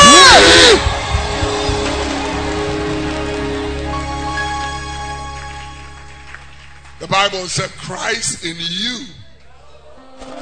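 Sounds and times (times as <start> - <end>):
church audience screaming: 0.0 - 4.0
church audience cheering: 0.0 - 7.2
steady music: 0.0 - 9.1
speech: 7.2 - 9.2.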